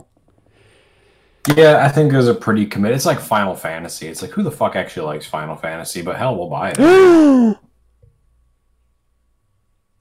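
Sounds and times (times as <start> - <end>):
speech: 1.5 - 7.6
sharp voiced gasp of shock: 6.8 - 7.6.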